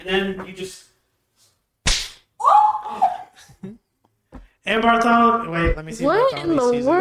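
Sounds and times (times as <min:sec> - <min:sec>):
speech: 0:00.0 - 0:00.9, 0:04.7 - 0:06.9
sharp loud hand slap: 0:01.8 - 0:02.3.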